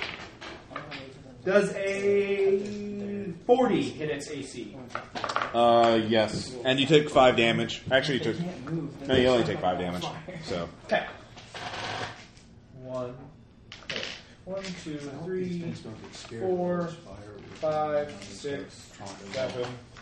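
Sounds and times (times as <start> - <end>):
speech: 1.4 - 2.8, 3.5 - 11.2, 14.7 - 19.9
handful of dice clattering and rattling across a tabletop: 5.0 - 5.5.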